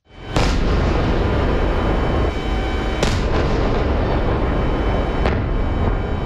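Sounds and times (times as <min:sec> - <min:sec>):
booming explosions during overnight drone and missile attack on Ukraine: 0:00.0 - 0:06.2
constant heavy rumble: 0:00.1 - 0:06.2.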